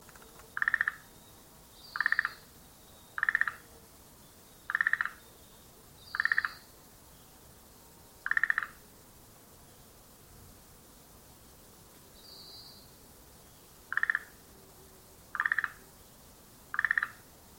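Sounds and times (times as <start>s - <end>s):
Schlegel's green tree frog calling: 0.6s - 1.1s, 1.8s - 2.5s, 3.2s - 3.6s, 4.7s - 5.3s, 6.1s - 6.7s, 8.2s - 8.8s, 13.9s - 14.4s, 15.3s - 15.8s, 16.7s - 17.2s.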